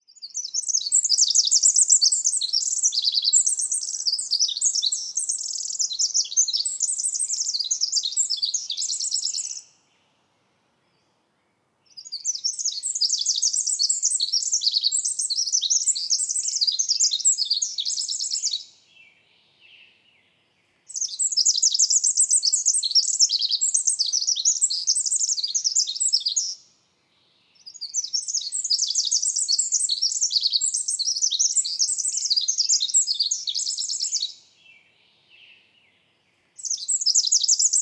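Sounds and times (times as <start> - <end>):
wren singing: 0.1 - 9.8, 11.9 - 19.0, 20.9 - 26.6, 27.6 - 34.8, 36.6 - 37.7.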